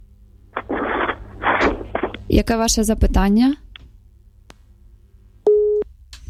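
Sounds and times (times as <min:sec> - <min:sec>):
low rumble: 0:00.0 - 0:05.4
speech: 0:02.3 - 0:03.6
telephone busy-signal beep after dropped call: 0:05.5 - 0:05.8.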